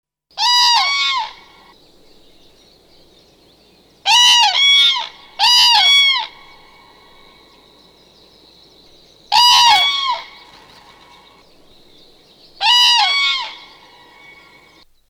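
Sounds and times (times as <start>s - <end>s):
Common crane trumpet calls: 0.4s - 1.7s, 4.0s - 7.9s, 8.9s - 14.8s.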